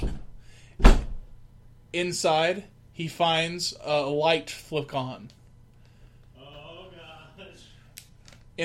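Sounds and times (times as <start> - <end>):
door shutting with a thud: 0.0 - 1.3
speech: 2.0 - 5.4.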